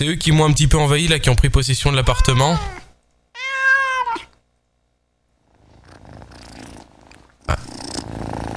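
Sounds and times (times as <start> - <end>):
speech: 0.0 - 2.8
cat meowing: 2.0 - 4.4
cat purring: 5.5 - 8.5.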